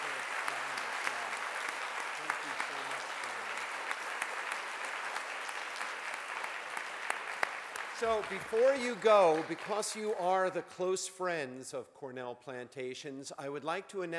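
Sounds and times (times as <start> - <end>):
audience applause after an evening lecture at a botanical garden: 0.0 - 10.4
speech: 8.0 - 14.1.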